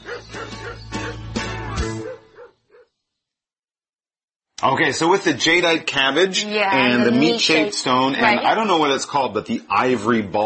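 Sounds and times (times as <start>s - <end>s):
dog barking and yipping: 0.0s - 2.9s
speech: 4.6s - 10.4s.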